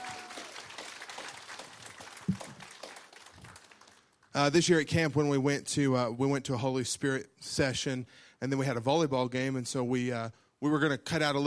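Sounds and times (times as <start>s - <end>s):
audience applause for a speaker: 0.0s - 4.2s
speech: 4.4s - 11.4s.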